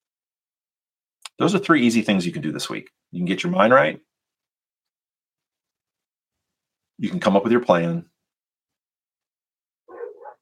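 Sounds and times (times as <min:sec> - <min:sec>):
speech: 0:01.4 - 0:04.1, 0:07.0 - 0:08.1
dog barking outside, muffled: 0:09.9 - 0:10.3.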